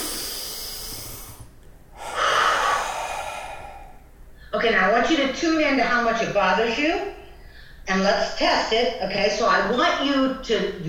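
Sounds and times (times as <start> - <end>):
deep breath during a tapping relaxation exercise: 0.0 - 4.6, 7.4 - 7.8
speech: 5.0 - 7.2, 7.9 - 10.8.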